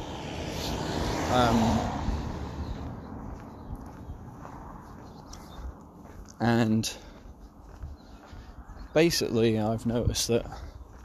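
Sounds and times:
car passing by outdoors: 0:00.0 - 0:06.0
speech: 0:01.3 - 0:02.0, 0:06.4 - 0:07.1, 0:09.0 - 0:10.7.

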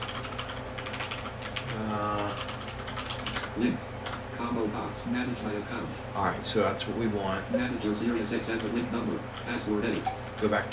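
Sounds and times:
computer keyboard typing an email address into a login field: 0:00.0 - 0:04.2, 0:08.5 - 0:10.7
speech: 0:03.6 - 0:10.7.

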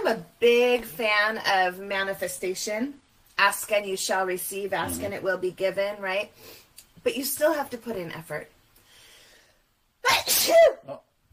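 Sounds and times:
speech: 0:00.0 - 0:08.6, 0:10.0 - 0:11.1
person sneezing: 0:04.8 - 0:05.2, 0:10.1 - 0:10.8.

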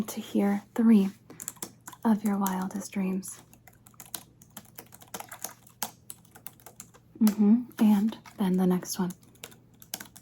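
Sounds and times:
speech: 0:00.0 - 0:01.2, 0:02.0 - 0:03.5, 0:07.2 - 0:09.2
typing on a computer keyboard: 0:01.3 - 0:07.0, 0:07.7 - 0:10.1.

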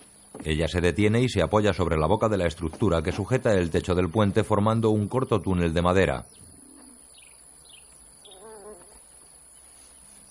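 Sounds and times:
speech: 0:00.4 - 0:06.4
high insect-like chirring: 0:06.0 - 0:10.3
pigeon cooing: 0:06.5 - 0:07.1, 0:08.2 - 0:09.1.

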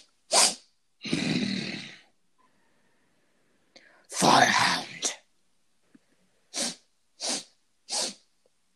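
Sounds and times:
person imitating sniffing at the ground with snort and nasal inhale: 0:00.0 - 0:02.0, 0:06.5 - 0:08.2.

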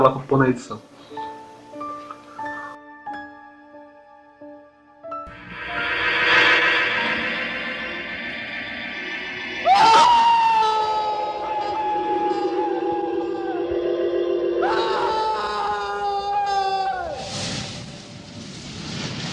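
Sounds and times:
speech: 0:00.0 - 0:01.2
steady tones: 0:05.3 - 0:16.5
person screaming frantically: 0:09.6 - 0:13.8, 0:14.6 - 0:17.3.

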